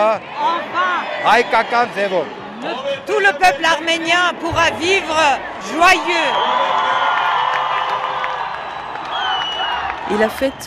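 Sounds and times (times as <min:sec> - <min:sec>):
speech: 0:00.0 - 0:07.1, 0:10.1 - 0:10.6
large festive crowd cheering and shouting on a historic square: 0:00.0 - 0:10.6
scattered whoops and high calls from the crowd: 0:06.2 - 0:10.0.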